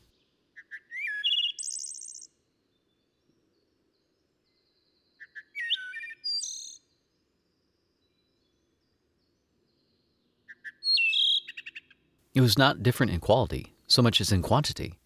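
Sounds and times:
songbird singing at the edge of an orchard adjoining a wood: 0.6s - 2.3s, 5.0s - 6.9s, 10.3s - 12.0s
speech: 12.4s - 15.0s.

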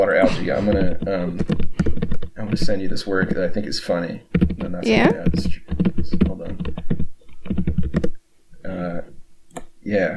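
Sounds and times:
speech: 0.0s - 6.2s, 9.9s - 10.1s
typing on an old laptop keyboard: 0.6s - 8.2s.

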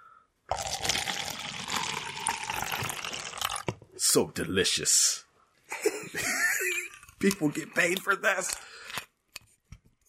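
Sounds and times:
fizzy drink pouring into a glass: 0.5s - 3.8s
speech: 4.1s - 5.2s, 7.2s - 8.8s
laughter: 5.7s - 7.1s.

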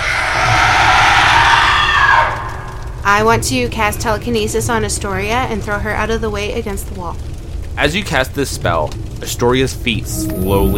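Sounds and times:
severely injured wraith giving a piercing unearthly shriek: 0.0s - 3.0s, 10.0s - 10.7s
low rumbling undertone: 0.0s - 10.7s
speech: 3.1s - 10.7s.

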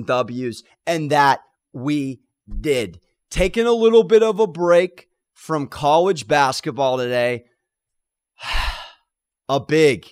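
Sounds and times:
speech: 0.0s - 7.5s, 8.4s - 8.7s, 9.5s - 10.0s
big deep breath and voiced sighing exhale: 8.4s - 9.2s.

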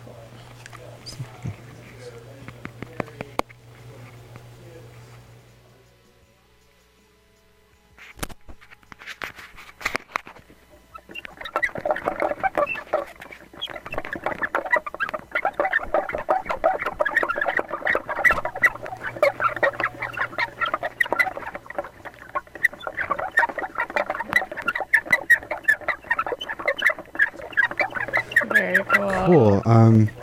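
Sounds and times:
tire swing creaking and squeaking: 10.4s - 30.2s.

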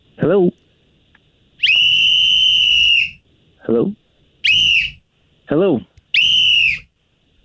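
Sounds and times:
speech: 0.3s - 0.6s, 3.7s - 4.0s, 5.5s - 5.9s
piercing whistle blasts through a phone line: 1.6s - 3.2s, 4.4s - 5.0s, 6.1s - 6.9s.

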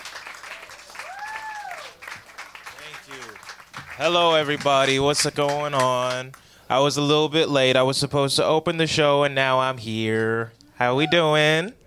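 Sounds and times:
audience clapping at a live show: 0.0s - 6.5s
speech: 4.0s - 11.8s.

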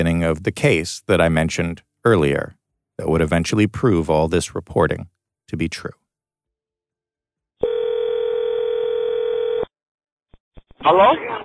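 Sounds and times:
speech: 0.0s - 6.0s, 10.8s - 11.4s
telephone dial tone for an outgoing call: 7.6s - 9.7s.

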